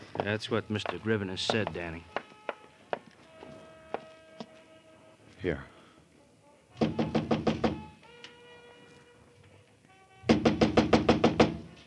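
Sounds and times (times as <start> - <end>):
rapid insistent heavy knocking on a door: 0.2 - 1.9, 6.8 - 7.9, 10.3 - 11.7
speech: 0.2 - 2.2, 5.4 - 5.7.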